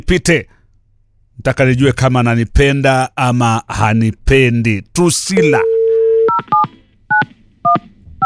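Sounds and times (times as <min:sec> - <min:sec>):
speech: 0:00.0 - 0:00.6, 0:01.4 - 0:05.7
telephone dialing tone on a phone line: 0:05.5 - 0:06.6
two-tone telephone keypad beeps: 0:05.7 - 0:08.2.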